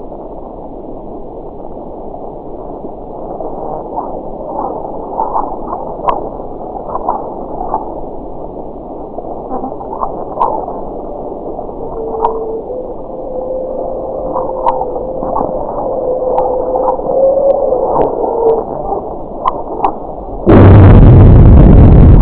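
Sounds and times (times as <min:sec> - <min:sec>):
sonification of magnitude 6.3 earthquake in the Ionian Islands Greece: 0:09.3 - 0:22.1.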